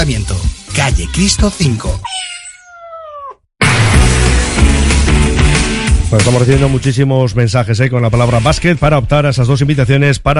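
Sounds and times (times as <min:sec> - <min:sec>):
speech: 0:00.0 - 0:02.2, 0:06.1 - 0:10.3
cat meowing: 0:02.0 - 0:03.4
loud dense music: 0:03.6 - 0:07.0.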